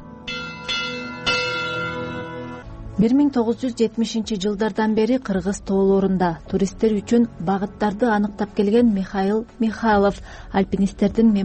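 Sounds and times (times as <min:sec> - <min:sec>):
bell struck at a mountaineers' memorial: 0:00.2 - 0:02.6
speech: 0:03.0 - 0:11.4.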